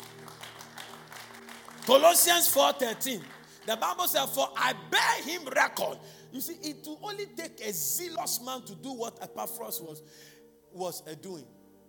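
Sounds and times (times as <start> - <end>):
scattered clapping from a church audience: 0.0 - 4.2
speech: 1.9 - 11.6.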